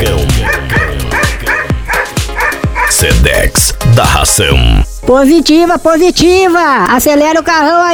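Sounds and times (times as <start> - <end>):
dogs barking: 0.0 - 3.2
speech: 4.2 - 7.9.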